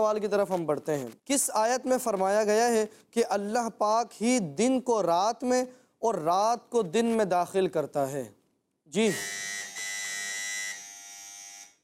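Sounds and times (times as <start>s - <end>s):
speech: 0.0s - 9.6s
quiz show buzzer pressed: 9.0s - 11.8s.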